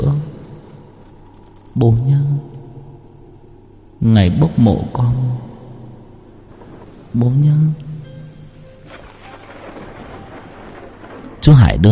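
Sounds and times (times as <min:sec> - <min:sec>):
speech: 0:01.8 - 0:02.6, 0:04.0 - 0:05.5, 0:07.1 - 0:07.8, 0:11.4 - 0:11.9
rain falling outdoors: 0:06.4 - 0:11.9.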